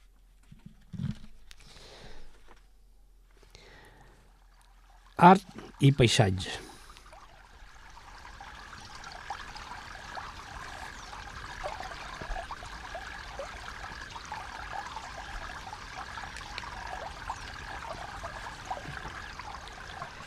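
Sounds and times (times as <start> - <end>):
river water flowing and trickling with small splashes: 4.3 - 20.2
speech: 5.2 - 6.7.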